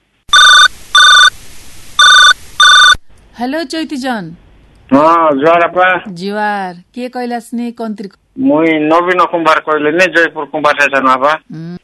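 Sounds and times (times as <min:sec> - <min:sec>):
telephone ringing with an incoming call: 0:00.3 - 0:01.3, 0:02.0 - 0:03.0
speech: 0:03.4 - 0:11.8.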